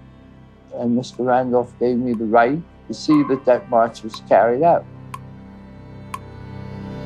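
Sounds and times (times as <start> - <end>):
speech: 0.7 - 4.9
clock ticking: 3.1 - 4.3.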